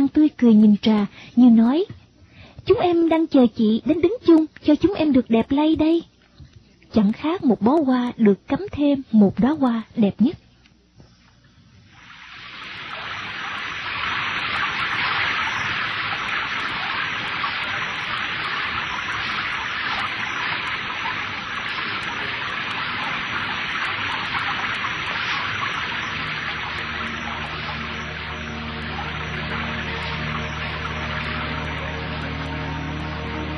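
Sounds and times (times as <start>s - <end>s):
speech: 0.4s - 2.0s, 2.6s - 6.1s, 6.9s - 10.4s
heavy rain pouring: 12.0s - 33.5s
faint low tones: 20.4s - 33.5s.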